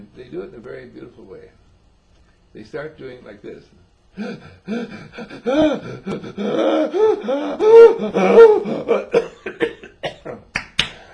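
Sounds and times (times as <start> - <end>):
speech: 0.1 - 1.7, 2.5 - 9.7
voice imitating rapid hyperventilating with gasping breaths: 4.2 - 9.8.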